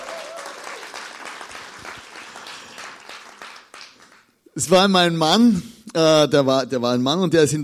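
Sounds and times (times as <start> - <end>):
audience applause: 0.0 - 4.3
speech: 4.6 - 7.6.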